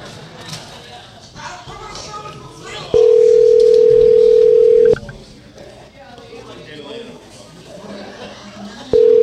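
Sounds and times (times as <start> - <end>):
faint noise on the phone line: 0.0 - 9.2
phone ringback tone of an unanswered call: 3.0 - 5.0, 9.0 - 9.2.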